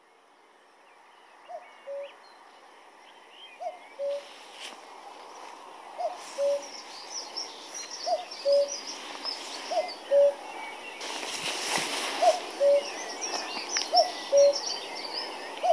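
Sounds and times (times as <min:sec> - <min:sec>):
faint twittering of other birds: 0:01.0 - 0:15.7
common cuckoo singing a two-note cu-ckoo: 0:03.6 - 0:04.4, 0:06.0 - 0:06.7, 0:07.8 - 0:15.7.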